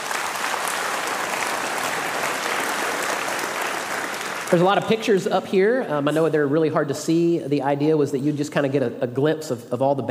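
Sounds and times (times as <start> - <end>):
large crowd applauding: 0.0 - 5.4
speech: 4.5 - 10.0.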